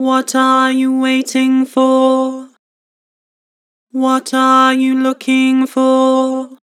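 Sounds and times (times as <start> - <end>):
person singing flat vocals: 0.0 - 2.6, 4.0 - 6.6.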